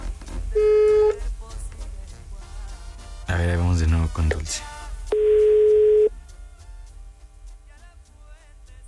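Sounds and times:
voicemail prompt electronic beep tone on a phone call: 0:00.6 - 0:01.2, 0:05.1 - 0:06.1
speech: 0:04.0 - 0:04.8.

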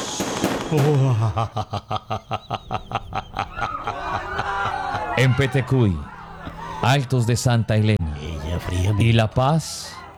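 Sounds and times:
dry sharp echoing gunshots during street attacks in Cali: 0:00.0 - 0:01.2
mixed noise: 0:00.0 - 0:10.1
speech: 0:00.7 - 0:03.1, 0:05.2 - 0:06.1, 0:06.8 - 0:08.0, 0:08.7 - 0:10.0
laughter: 0:00.7 - 0:07.5.

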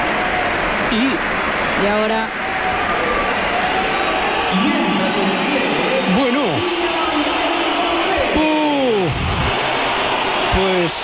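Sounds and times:
dense stadium crowd roaring: 0:00.0 - 0:11.0
speech: 0:00.9 - 0:02.8
stadium crowd whistling: 0:02.4 - 0:11.0.

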